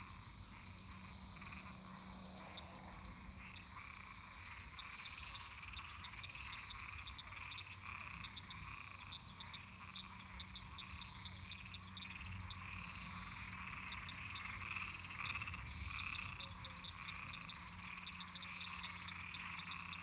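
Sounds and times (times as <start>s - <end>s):
toads and frogs croaking in a marsh: 0.0s - 20.0s.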